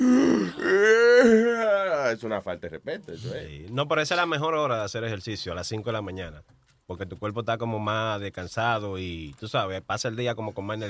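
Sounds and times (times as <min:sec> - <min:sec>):
person imitating a long drawn-out yawn: 0:00.0 - 0:01.8
speech: 0:02.2 - 0:10.8.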